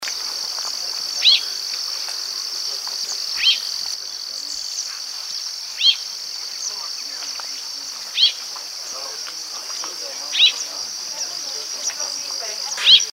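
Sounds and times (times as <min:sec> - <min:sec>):
Chinese Rubythroat Calliope tschebaiewi calling in Ladakh: 0:01.1 - 0:13.1.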